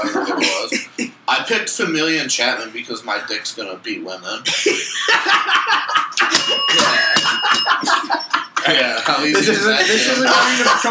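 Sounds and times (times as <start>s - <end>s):
several people laughing: 0.0s - 1.1s, 4.4s - 10.8s
speech: 1.5s - 10.8s
small desk bell dinging: 6.3s - 8.6s.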